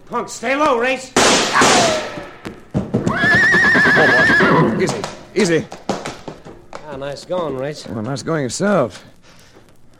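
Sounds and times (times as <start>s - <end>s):
speech: 0.1s - 2.6s, 4.0s - 5.8s, 7.0s - 9.1s
hoof clatter and scuffling thuds: 2.1s - 9.9s
horse whinnying with a long quavering neigh: 3.1s - 5.0s.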